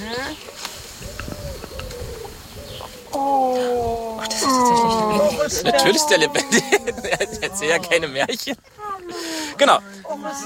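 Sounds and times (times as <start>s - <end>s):
noise: 0.0s - 10.4s
dove cooing in a soft low phrase: 0.9s - 8.2s
laughter: 4.2s - 9.7s
speech: 5.5s - 10.4s.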